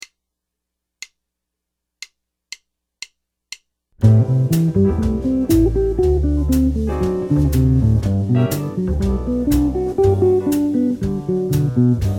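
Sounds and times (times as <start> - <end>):
guitar arpeggios: 4.0 - 12.0.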